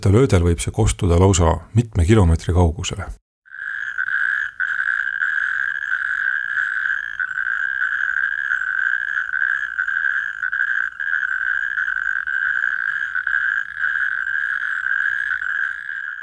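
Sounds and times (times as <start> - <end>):
speech: 0.0 - 3.2
natterjack toad loud rattling call: 3.5 - 16.2.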